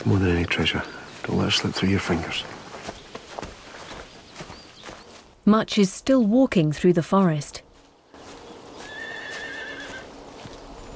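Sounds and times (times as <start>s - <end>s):
speech: 0.0s - 2.6s, 5.5s - 7.6s
hooves of guards' horses clip-clopping while pulling a carriage: 0.0s - 10.9s
horse whinnying: 8.8s - 10.0s.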